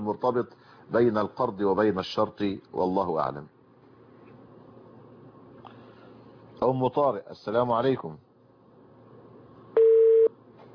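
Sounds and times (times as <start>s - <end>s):
speech: 0.0s - 3.6s, 6.6s - 8.2s
faint hiss: 0.0s - 10.7s
telephone busy tone after a dropped call: 9.8s - 10.3s.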